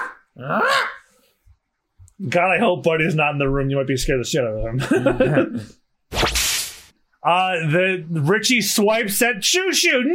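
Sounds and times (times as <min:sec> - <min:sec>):
throaty dog bark-growl from a dog blocking a pet food store entrance: 0:00.0 - 0:01.1
speech: 0:00.4 - 0:00.9, 0:02.2 - 0:05.8, 0:07.2 - 0:10.1
laughter: 0:04.7 - 0:05.8.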